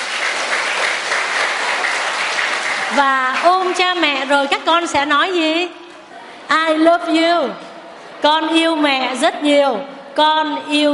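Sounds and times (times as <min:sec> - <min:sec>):
audience of children applauding at a Buddhist retreat: 0:00.0 - 0:04.0
speech: 0:02.9 - 0:05.8, 0:06.5 - 0:07.6, 0:08.2 - 0:10.9.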